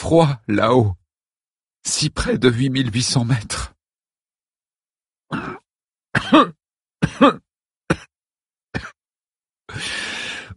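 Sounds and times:
speech: 0.0s - 1.0s, 1.8s - 3.7s, 6.2s - 6.6s, 7.2s - 7.4s
harsh hacking coughs: 5.3s - 9.0s
raspy breath: 9.7s - 10.5s.

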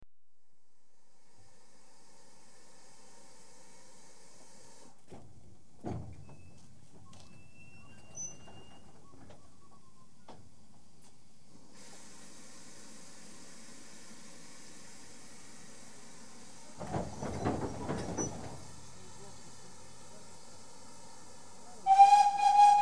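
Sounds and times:
train departing: 7.8s - 22.7s.

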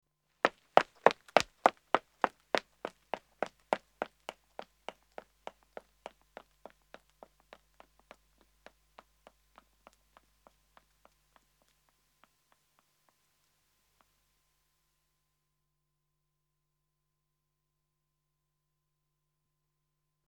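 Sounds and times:
man running away on pavement: 0.5s - 8.8s.

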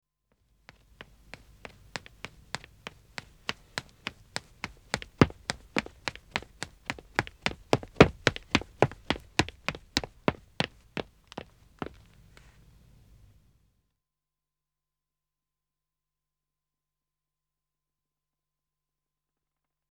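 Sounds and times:
man running footsteps on wood: 0.7s - 12.5s.

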